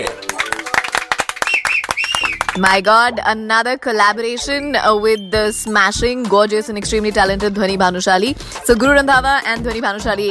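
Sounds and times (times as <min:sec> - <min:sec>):
applause welcoming a singer in a radio studio: 0:00.0 - 0:02.8
speech: 0:02.6 - 0:10.3.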